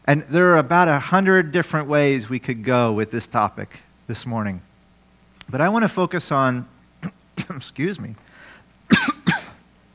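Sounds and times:
speech: 0.1s - 4.7s, 5.5s - 8.3s
person coughing after drinking from a bottle of water: 7.0s - 7.6s, 8.9s - 9.6s.

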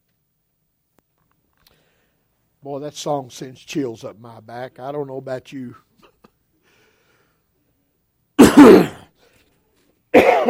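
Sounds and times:
speech: 2.6s - 5.9s
person coughing: 8.4s - 9.1s, 10.1s - 10.4s
rough throat clearing: 8.4s - 9.1s, 10.2s - 10.4s.

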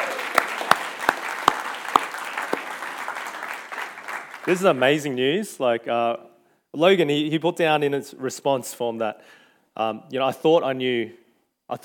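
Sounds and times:
audience applauding: 0.0s - 5.0s
speech: 4.5s - 11.8s.

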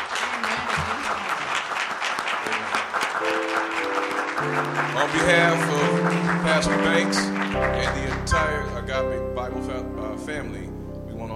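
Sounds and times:
church audience applauding for two newly elevated deacons: 0.0s - 8.8s
speech: 4.4s - 11.3s.

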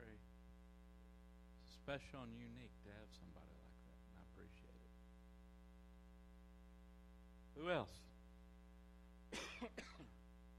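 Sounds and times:
low steady hum: 0.0s - 10.5s
speech: 1.8s - 3.8s, 4.4s - 5.0s, 7.6s - 8.2s, 9.6s - 10.2s
person coughing throatily: 9.3s - 10.2s.

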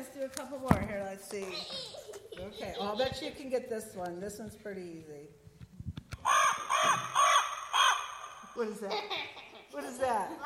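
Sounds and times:
speech: 0.2s - 5.5s, 8.6s - 10.4s
raven cawing: 6.2s - 8.6s.

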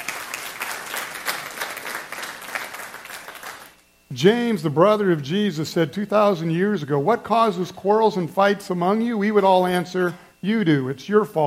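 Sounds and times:
audience applauding: 0.0s - 3.8s
speech: 4.1s - 11.4s.

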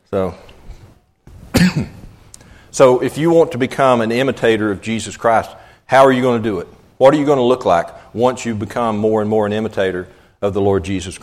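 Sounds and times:
speech: 0.1s - 0.5s, 1.7s - 2.0s, 2.8s - 11.2s
harsh cough: 1.5s - 2.2s.

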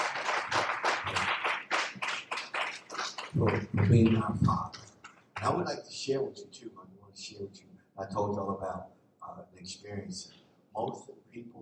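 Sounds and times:
audience clapping hands in praise: 0.0s - 5.6s
speech: 3.4s - 4.8s, 5.4s - 11.5s.

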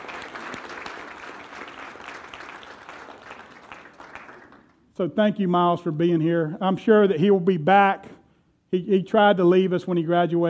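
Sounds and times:
audience applause: 0.0s - 4.8s
speech: 5.0s - 8.1s, 8.7s - 10.4s.

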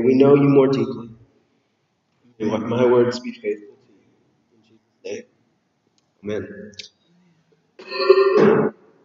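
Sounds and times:
speech: 0.0s - 1.1s, 2.4s - 3.7s, 5.0s - 5.3s, 6.2s - 7.0s, 7.9s - 8.8s
throat clearing breaking into a cough: 7.8s - 8.8s.

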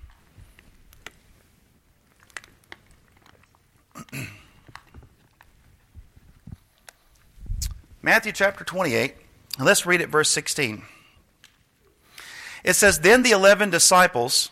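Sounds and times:
soft swallowing: 3.8s - 5.5s
faint clicks and mouth noises: 7.6s - 7.8s
speech: 8.0s - 11.0s, 12.6s - 14.4s.

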